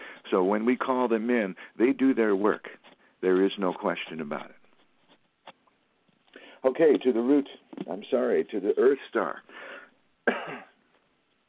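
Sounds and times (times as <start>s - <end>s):
speech: 0.3s - 4.6s, 6.6s - 9.7s
person coughing: 10.2s - 10.8s.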